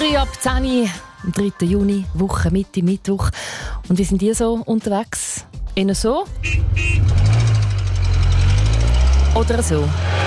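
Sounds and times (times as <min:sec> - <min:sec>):
speech: 0:00.2 - 0:07.0, 0:09.3 - 0:10.2
car engine started and running: 0:06.3 - 0:10.2.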